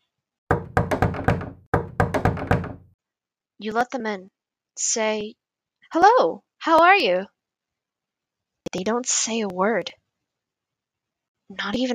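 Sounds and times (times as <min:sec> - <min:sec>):
knocking on a door: 0:00.5 - 0:03.0
speech: 0:03.6 - 0:07.3, 0:08.7 - 0:10.0, 0:11.5 - 0:11.9.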